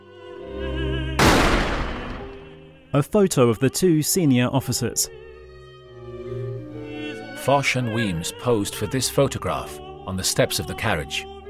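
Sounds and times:
pistol shot: 1.2 - 2.6
speech: 2.9 - 5.3, 7.4 - 11.3.

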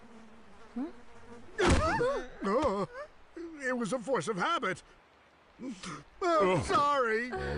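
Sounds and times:
fly buzzing: 0.0 - 3.4
speech: 0.8 - 1.0, 3.7 - 5.0, 5.6 - 7.5.

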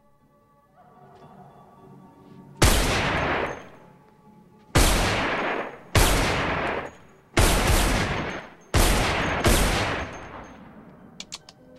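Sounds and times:
gunshots fired through a partition wall: 2.6 - 3.8, 4.8 - 10.5.

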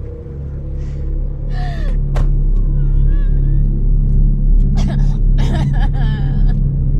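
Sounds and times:
car engine rumbling low: 0.0 - 6.9
person gasping and whimpering: 0.8 - 3.7, 4.8 - 6.6.

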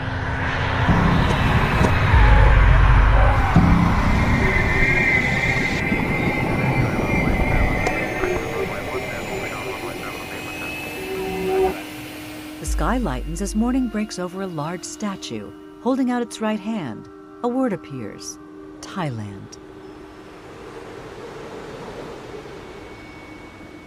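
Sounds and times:
passenger jet engines roaring overhead and planes taxiing at an airport: 0.0 - 14.1
speech: 12.9 - 19.6.

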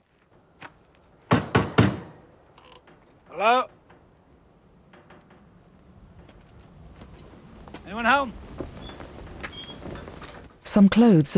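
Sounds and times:
knocking on a screen door on a porch: 1.3 - 2.3
speech: 3.4 - 3.8, 7.9 - 8.4, 10.8 - 11.3.

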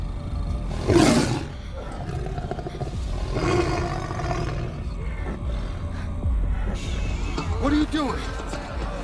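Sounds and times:
caged tiger roaring: 0.0 - 5.5
low rumble: 0.0 - 9.0.

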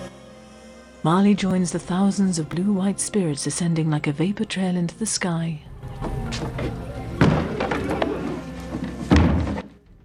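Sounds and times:
speech: 1.0 - 5.7
wooden shutters slamming shut: 6.0 - 10.0.

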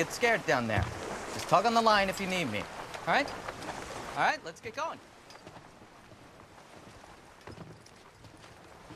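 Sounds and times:
speech: 0.0 - 3.5, 4.2 - 5.1
ocean water washing around a rocking boat: 0.0 - 8.9
wind on the ocean: 0.0 - 8.9
light knocks and thuds against a boat hull: 0.7 - 1.1.

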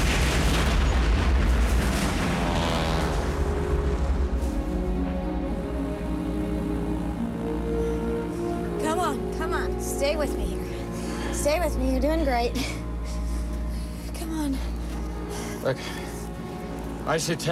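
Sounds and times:
mortar shell exploding on a pirate ship: 0.0 - 4.3
lingering crackle: 0.0 - 5.5
dramatic scoring: 0.0 - 17.5
descending whine: 1.6 - 10.7
speech: 9.8 - 10.5, 11.4 - 12.8, 15.6 - 16.0, 17.1 - 17.5.

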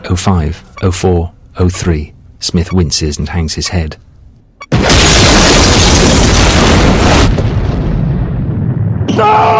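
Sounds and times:
speech: 0.1 - 5.5, 9.2 - 9.5
explosive device detonating and blowing a ship apart: 4.7 - 9.5.

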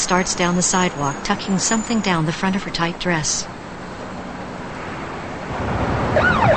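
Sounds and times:
speech: 0.0 - 3.6
steady rushing noise of a busy street: 0.0 - 6.5
siren of an unmarked police car pulling up on a busy street: 5.8 - 6.5.

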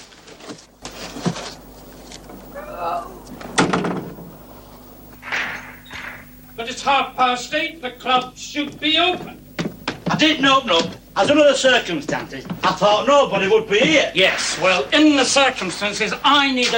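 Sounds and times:
metal hatch set in the ground shut with a heavy thud: 3.4 - 4.3
speech: 6.8 - 9.4, 10.2 - 16.7.

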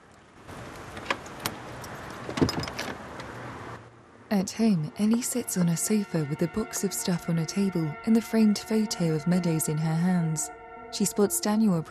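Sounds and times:
keys jingling: 0.8 - 3.0
speech: 4.3 - 11.8.

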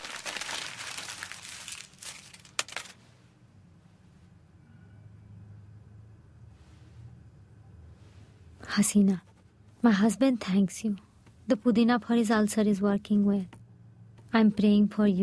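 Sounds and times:
paper letter being crumpled up by hand: 0.0 - 3.0
speech: 8.8 - 13.6, 14.3 - 15.2.

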